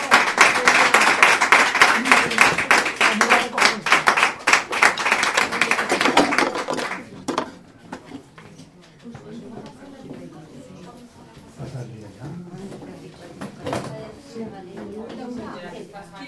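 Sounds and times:
audience applause at a presentation event: 0.0 - 7.3.

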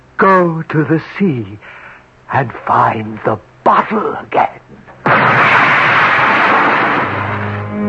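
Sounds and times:
speech: 0.2 - 5.4
dramatized explosion of a great jagged streak of fire: 5.0 - 7.7.

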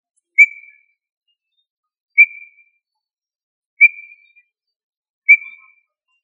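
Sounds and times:
tinamou calling with clear short whistled notes: 0.4 - 0.9, 2.2 - 2.6, 3.8 - 4.4, 5.3 - 5.9.

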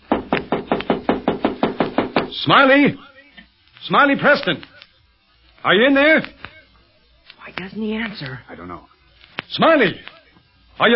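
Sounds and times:
knocking on a door: 0.0 - 2.3
speech: 2.4 - 3.1, 3.8 - 4.7, 5.6 - 6.4, 7.5 - 8.9, 9.5 - 10.2, 10.8 - 10.9.

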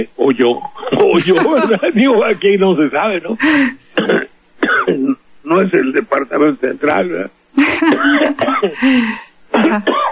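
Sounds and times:
speech: 0.0 - 4.2, 5.5 - 10.0
laughter: 0.8 - 2.2, 7.6 - 8.8
person clearing throat: 4.0 - 5.2, 7.9 - 8.8, 9.6 - 10.0
person coughing: 4.0 - 5.2, 7.8 - 8.8, 9.6 - 10.0.

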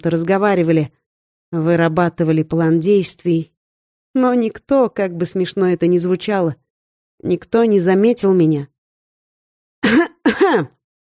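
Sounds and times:
speech: 0.0 - 3.5, 4.2 - 6.6, 7.2 - 8.7, 9.8 - 10.8
woman giving a loud cough: 9.8 - 10.8.

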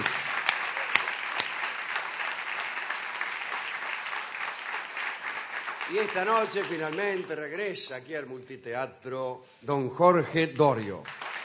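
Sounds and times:
theatre audience applause: 0.0 - 7.7, 11.0 - 11.4
speech: 5.9 - 11.2.

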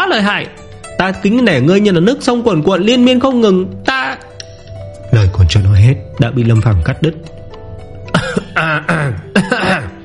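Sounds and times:
speech: 0.1 - 4.3, 5.2 - 7.3, 8.6 - 9.3
violent dry coughing: 8.1 - 10.0.

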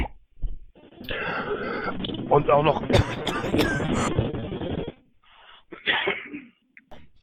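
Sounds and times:
ragged breathing: 0.8 - 6.4
speech: 1.1 - 4.4
harsh coughing fit from a person with a heavy cold: 2.8 - 4.4, 5.7 - 6.6.

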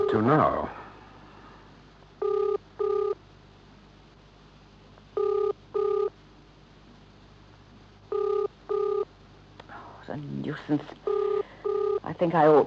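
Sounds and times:
telephone ringing unanswered through an earpiece: 0.0 - 0.3, 2.2 - 3.2, 5.2 - 6.1, 8.1 - 9.1, 11.0 - 12.1
low hum: 0.0 - 12.6
speech: 0.1 - 0.8, 10.7 - 11.1, 12.2 - 12.6.

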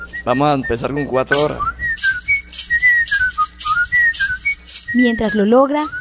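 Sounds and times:
practiced whistler whistling a lively melody: 0.0 - 5.9
speech: 0.2 - 2.1, 4.9 - 5.9.

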